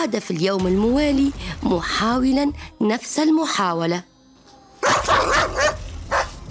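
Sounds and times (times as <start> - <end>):
speech: 0.0 - 4.1, 5.0 - 5.8
dog barking: 4.8 - 6.4.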